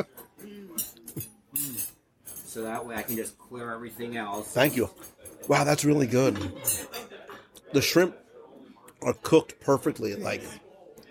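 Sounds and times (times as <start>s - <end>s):
silverware and plates clinking on a table: 0.0s - 8.1s
speech: 2.6s - 6.8s, 7.7s - 8.2s, 9.0s - 10.6s.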